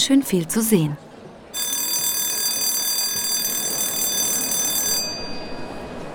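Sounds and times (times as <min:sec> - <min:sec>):
speech: 0:00.0 - 0:01.0
opera house electric bell ringing before performance: 0:01.6 - 0:06.1.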